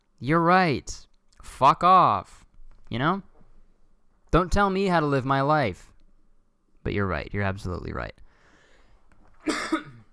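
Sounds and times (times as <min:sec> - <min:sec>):
speech: 0:00.2 - 0:03.3, 0:04.3 - 0:05.9, 0:06.8 - 0:08.2
wet phlegmy cough: 0:09.4 - 0:10.1.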